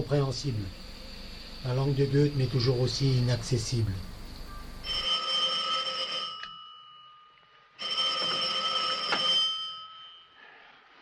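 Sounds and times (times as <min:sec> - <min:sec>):
speech: 0:00.0 - 0:00.8, 0:01.6 - 0:04.1
telephone ringing for a wake-up call: 0:04.5 - 0:10.4.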